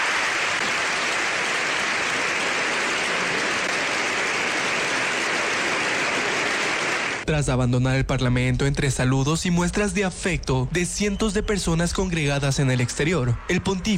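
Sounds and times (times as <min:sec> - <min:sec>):
standing ovation applause from legislators in a parliament chamber in Spain: 0:00.0 - 0:07.3
speech: 0:07.3 - 0:13.9.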